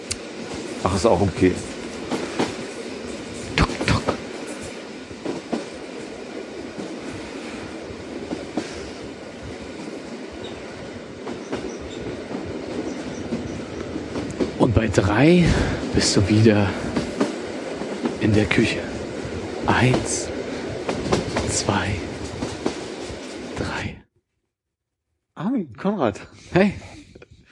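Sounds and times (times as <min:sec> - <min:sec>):
train rolling along the rails heard from on board: 0:00.0 - 0:24.0
train wheels clickety-clack: 0:00.1 - 0:07.2, 0:11.2 - 0:18.9, 0:19.7 - 0:23.5
speech: 0:00.8 - 0:02.2, 0:14.8 - 0:16.9, 0:18.2 - 0:18.9, 0:19.7 - 0:20.3, 0:21.6 - 0:22.1, 0:26.0 - 0:26.8.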